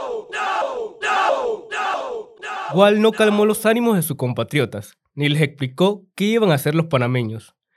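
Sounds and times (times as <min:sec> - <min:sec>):
crowd of students shouting: 0:00.0 - 0:03.6
speech: 0:02.7 - 0:07.6.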